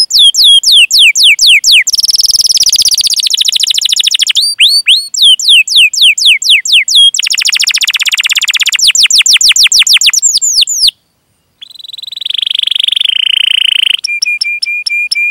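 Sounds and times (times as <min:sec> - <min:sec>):
Atlantic canary singing energetically: 0:00.0 - 0:15.3.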